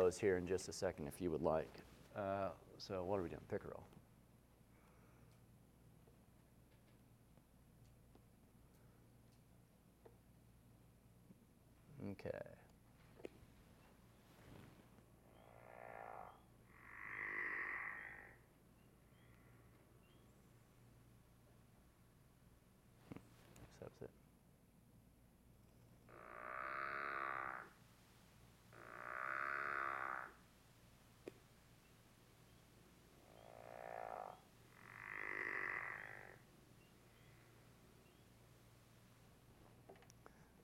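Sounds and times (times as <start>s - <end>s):
speech: 0.0s - 4.0s, 12.0s - 12.6s, 23.8s - 24.2s
faint hum: 0.0s - 17.0s, 17.6s - 40.6s
frog calling with drawn-out croaks: 15.2s - 20.2s, 26.0s - 27.8s, 28.7s - 30.5s, 33.1s - 38.2s.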